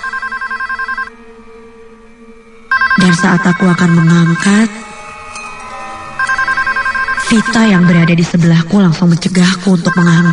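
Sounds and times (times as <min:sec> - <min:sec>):
karaoke room telephone ringing: 0:00.0 - 0:01.2, 0:02.7 - 0:04.9, 0:05.6 - 0:08.3
speech: 0:03.0 - 0:04.9, 0:07.3 - 0:10.3.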